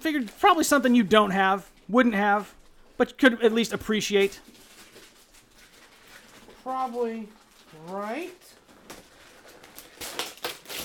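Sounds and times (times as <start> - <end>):
speech: 0.0 - 4.6, 6.6 - 8.6
wrapping paper being ripped open from a gift: 4.4 - 10.8.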